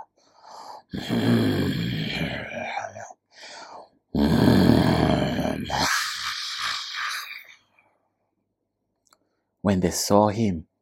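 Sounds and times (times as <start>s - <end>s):
person voicing a fierce panther growl: 0.8s - 3.0s, 4.1s - 7.6s
speech: 9.7s - 10.7s.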